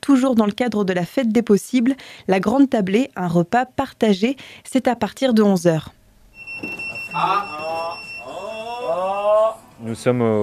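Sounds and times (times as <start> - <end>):
speech: 0.1 - 6.0, 6.6 - 7.6, 9.8 - 10.4
fire station electronic alert tone: 6.4 - 9.8.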